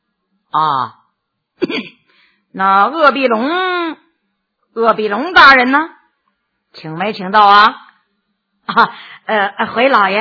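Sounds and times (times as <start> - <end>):
speech: 0.5 - 1.0, 2.6 - 4.0, 4.8 - 6.0, 6.7 - 7.8, 8.7 - 10.1
person coughing lightly: 1.6 - 2.1.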